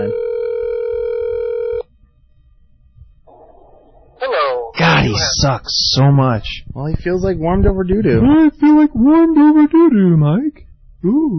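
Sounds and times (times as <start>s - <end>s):
phone call electronic ringing tone: 0.0s - 1.9s
speech: 5.2s - 11.3s.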